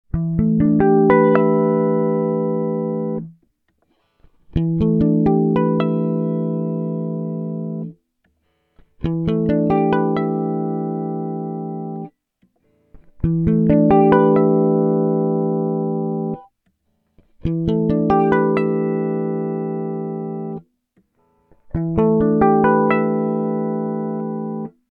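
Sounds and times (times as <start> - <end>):
bass guitar: 0.1 - 3.4, 4.5 - 8.0, 9.0 - 12.1, 13.0 - 16.4, 17.4 - 20.6, 21.7 - 24.7.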